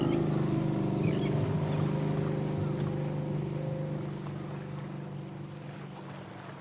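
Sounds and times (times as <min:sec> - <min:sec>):
boat engine rumbling: 0:00.0 - 0:06.6.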